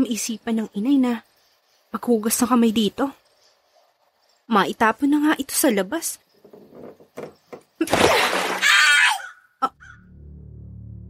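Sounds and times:
speech: 0.0s - 3.2s, 4.5s - 8.5s
splashing burst: 7.9s - 8.8s
shrill piercing rat-like squeal: 8.6s - 10.0s.

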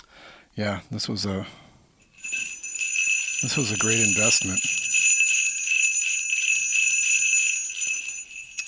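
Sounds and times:
speech: 0.6s - 1.6s, 3.4s - 4.8s
sleigh bells ringing: 2.0s - 8.6s.

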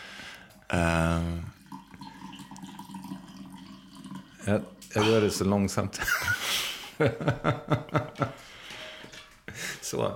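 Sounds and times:
speech: 0.7s - 1.5s, 4.5s - 8.6s, 9.9s - 10.1s
coffee being poured into a cup: 1.4s - 5.6s.

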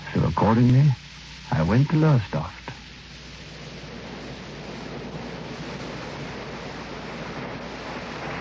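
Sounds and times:
sea waves washing against the shore: 0.0s - 8.4s
speech: 0.1s - 2.7s.

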